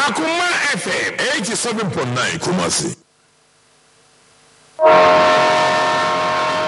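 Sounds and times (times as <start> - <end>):
speech: 0.1 - 3.1
rumbling rail noise: 4.8 - 6.6
train horn blast: 4.8 - 6.6.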